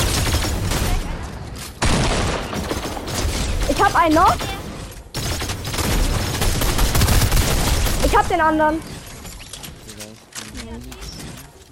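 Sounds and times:
video game gunfire from a double-shot weapon: 0.0 - 9.2
speech: 3.8 - 4.5, 8.1 - 8.9.

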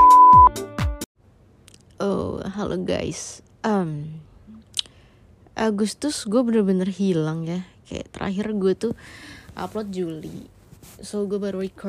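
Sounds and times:
loud steady electronic beep: 0.0 - 0.5
speech: 2.6 - 4.3, 5.6 - 11.8.

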